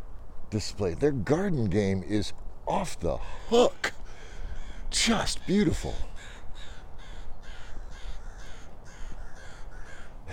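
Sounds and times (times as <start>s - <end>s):
speech: 0.5s - 4.0s, 4.9s - 6.3s
crows cawing: 3.2s - 10.3s.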